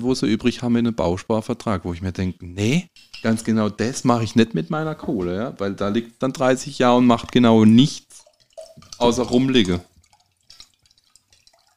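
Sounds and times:
speech: 0.0s - 8.2s, 8.8s - 9.9s
person drinking water with gurgles and gulps: 8.0s - 11.7s.

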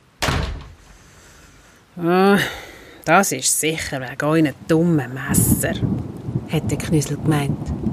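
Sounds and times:
kitchen door slamming shut: 0.2s - 0.8s
speech: 2.0s - 7.9s.

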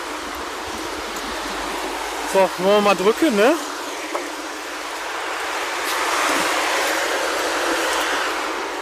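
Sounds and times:
steady loud broadband traffic hiss at a street crossing: 0.0s - 8.8s
speech: 2.3s - 3.7s.

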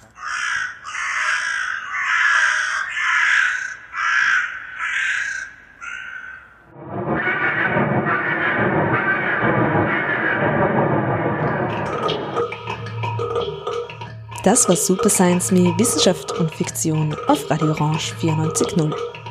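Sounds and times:
young crow or raven cawing: 0.1s - 6.6s
dense continuous wash of noisy sound: 6.8s - 13.5s
speech: 14.4s - 19.1s.

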